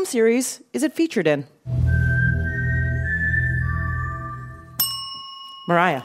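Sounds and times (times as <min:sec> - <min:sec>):
speech: 0:00.0 - 0:01.8, 0:05.7 - 0:06.0
low hum: 0:01.7 - 0:04.8
person whistling a short four-note tune in G minor: 0:01.8 - 0:04.7.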